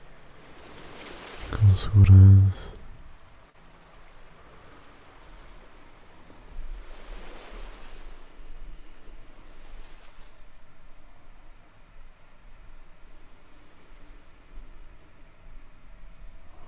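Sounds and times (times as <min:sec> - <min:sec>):
ocean surf waves: 0:00.0 - 0:16.6
speech: 0:01.6 - 0:02.8.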